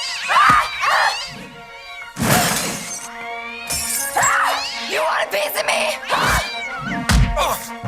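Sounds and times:
cat meowing: 0.0 - 7.6
crashing and shattering bursts: 2.2 - 3.1.

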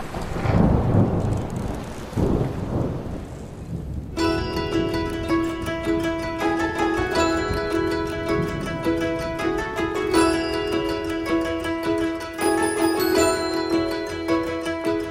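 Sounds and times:
deep rolls of thunder: 0.0 - 9.7
heavy rain: 0.0 - 15.0
bright musical tune: 4.2 - 15.0.

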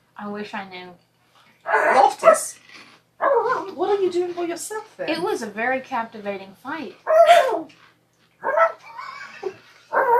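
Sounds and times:
speech: 0.2 - 8.8
dog whining: 1.6 - 2.5, 3.2 - 3.8, 7.0 - 7.7, 8.4 - 10.1.

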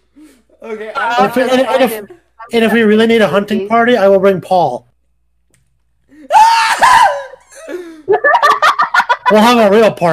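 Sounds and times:
speech: 0.6 - 4.9, 7.7 - 8.6, 9.3 - 10.1
man screaming high-pitched: 6.3 - 7.4
man's shrill yelps and squeals: 6.3 - 7.4
laughter: 7.2 - 9.7.

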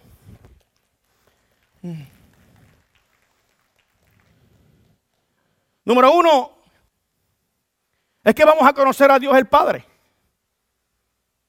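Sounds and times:
audience applauding: 0.6 - 5.2
speech: 1.8 - 2.2, 5.9 - 6.6, 8.2 - 9.9.

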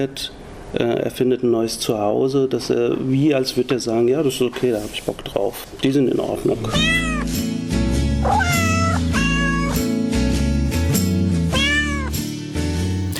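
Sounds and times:
speech: 0.0 - 7.4
cat meowing in drawn-out rising and falling cries: 6.6 - 7.4, 8.2 - 9.9, 11.5 - 12.2
steady musical backing: 6.8 - 13.1.

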